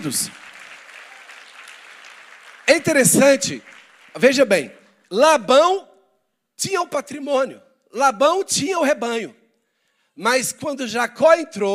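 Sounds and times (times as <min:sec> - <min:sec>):
speech: 0:00.0 - 0:00.5, 0:02.7 - 0:05.9, 0:06.6 - 0:09.4, 0:10.2 - 0:11.7
crowd applause: 0:00.0 - 0:04.4.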